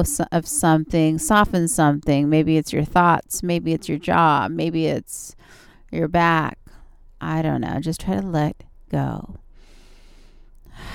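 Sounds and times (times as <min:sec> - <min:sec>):
speech: 0:00.0 - 0:06.6, 0:07.2 - 0:09.4
deep breath drawn in through the nose: 0:09.6 - 0:10.9.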